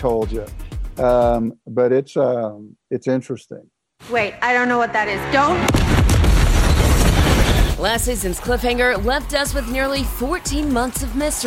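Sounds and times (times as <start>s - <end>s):
speech: 0.0s - 5.9s, 7.8s - 11.4s
massive explosion with crackling debris: 5.3s - 7.8s.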